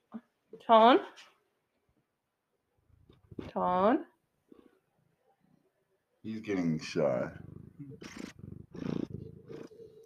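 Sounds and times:
speech: 0:00.7 - 0:01.3, 0:03.6 - 0:04.1, 0:06.2 - 0:08.9
cat purring: 0:02.8 - 0:03.6, 0:06.3 - 0:10.0.

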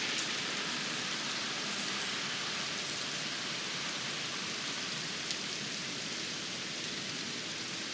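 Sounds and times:
steady rain falling outside an open window: 0:00.0 - 0:07.9.

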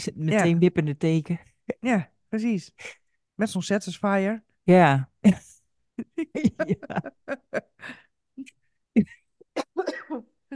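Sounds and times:
speech: 0:00.0 - 0:09.2
laughter: 0:05.3 - 0:08.0
person coughing: 0:09.0 - 0:10.5.

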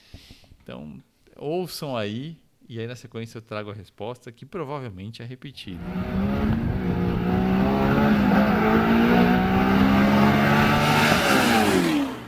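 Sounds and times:
speech: 0:00.7 - 0:07.0, 0:08.2 - 0:09.7
Chevrolet DZ302 V8 engine revving: 0:05.8 - 0:12.2.

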